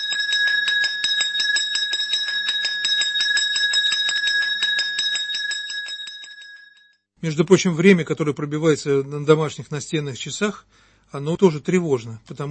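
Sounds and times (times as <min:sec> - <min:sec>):
school handbell shaken fast and ringing: 0:00.0 - 0:07.0
speech: 0:07.2 - 0:12.4.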